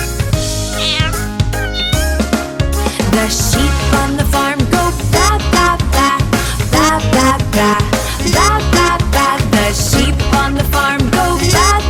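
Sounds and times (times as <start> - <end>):
loud rhythmic children's music with a steady beat: 0.0 - 11.8
farm cat meowing: 0.7 - 2.2.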